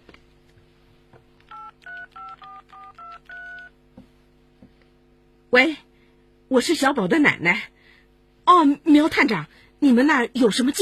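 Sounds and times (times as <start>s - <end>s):
low steady hum: 0.0s - 10.8s
mobile phone keypad dialing tones: 1.5s - 3.8s
speech: 5.5s - 5.8s, 6.5s - 7.7s, 8.6s - 10.8s.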